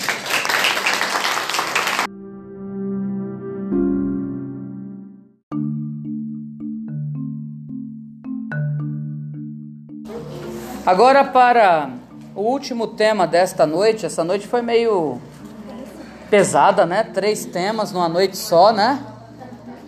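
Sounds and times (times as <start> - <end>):
audience applause: 0.0 - 2.1
short melodic instrumental jingle of sustained notes: 2.1 - 10.9
speech: 10.9 - 15.3, 16.3 - 19.1.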